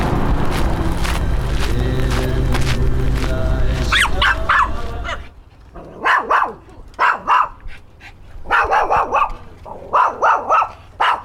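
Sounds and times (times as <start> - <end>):
steady rumbling noise: 0.0 - 10.0
dog barking: 3.9 - 5.2, 5.8 - 7.7, 8.4 - 11.2.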